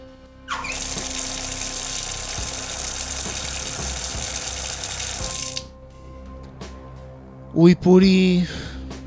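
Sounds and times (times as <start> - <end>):
water gushing from a tap: 0.5 - 5.7
speech: 7.6 - 9.0.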